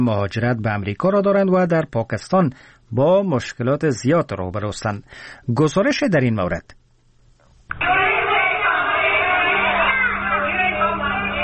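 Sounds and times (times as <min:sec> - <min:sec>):
speech: 0:00.0 - 0:06.8
Afghan refugee women and children protesting in an enclosed venue in Islamabad: 0:07.7 - 0:11.4.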